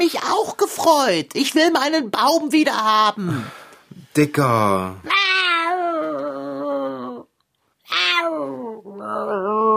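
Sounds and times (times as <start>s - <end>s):
speech: 0.0s - 3.6s, 4.2s - 5.6s
tomcat yowling: 5.1s - 7.2s, 7.8s - 9.7s.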